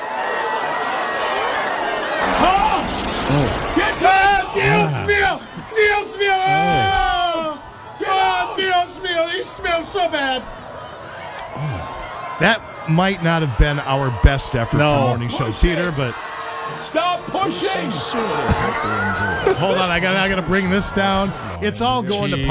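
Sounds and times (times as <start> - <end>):
crowd screaming and shouting with wails and whoops: 0.0 - 21.8
laughter: 0.9 - 7.7, 17.2 - 22.4
speech: 3.3 - 3.8, 8.9 - 10.6, 11.6 - 22.4.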